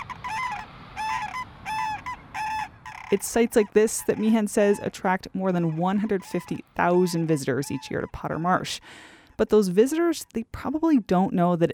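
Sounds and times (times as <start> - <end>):
sandhill crane loud rolling trumpeting calls at a marsh in Alaska: 0.0 - 9.0
speech: 3.1 - 11.7.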